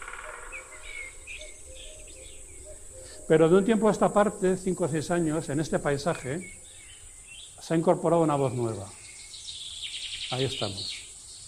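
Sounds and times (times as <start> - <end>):
soft steady hush of forest: 0.0 - 9.1
wood pigeons cooing in forest: 0.0 - 9.1
cuckoos calling in forest: 0.0 - 11.4
scattered high bird chirps: 0.0 - 11.4
speech: 3.3 - 6.6, 7.7 - 9.0, 10.3 - 11.0.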